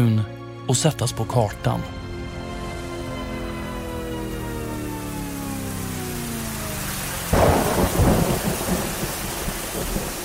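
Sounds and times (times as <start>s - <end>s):
speech: 0.0s - 2.0s
heavy rain hissing: 2.5s - 10.2s
thunderclap rumbling: 7.3s - 10.2s.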